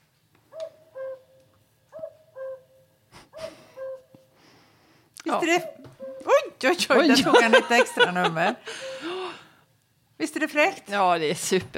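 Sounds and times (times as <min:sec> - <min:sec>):
faint noise: 0:00.0 - 0:11.7
cuckoo call played back from a bird-song book sound device: 0:00.5 - 0:04.3, 0:05.4 - 0:06.6
speech: 0:05.3 - 0:05.9, 0:06.6 - 0:08.9, 0:10.4 - 0:11.7
laughter: 0:06.7 - 0:09.2.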